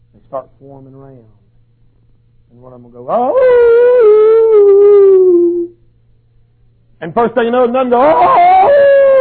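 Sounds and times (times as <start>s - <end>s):
speech: 0.3s - 1.4s, 2.5s - 5.0s, 7.0s - 8.9s
person imitating a wolf howl: 3.1s - 5.8s, 8.0s - 9.1s.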